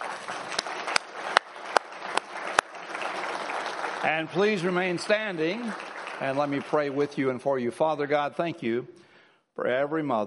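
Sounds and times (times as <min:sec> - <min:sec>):
audience applauding: 0:00.0 - 0:08.0
speech: 0:04.0 - 0:09.0, 0:09.6 - 0:10.2.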